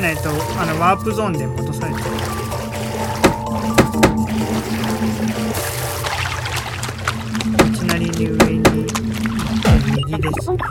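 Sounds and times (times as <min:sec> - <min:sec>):
speech: 0:00.0 - 0:02.4, 0:10.1 - 0:10.7
steady video game music: 0:00.0 - 0:10.0
video game character diving into a pool of water: 0:00.0 - 0:10.4
soft thumps: 0:03.1 - 0:05.0, 0:06.5 - 0:09.9.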